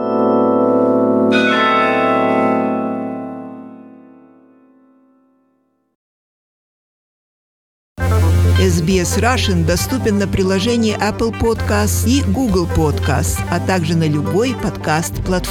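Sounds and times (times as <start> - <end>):
large church bell of Mechelen tolling: 0.0 - 5.4
speech: 8.9 - 15.4.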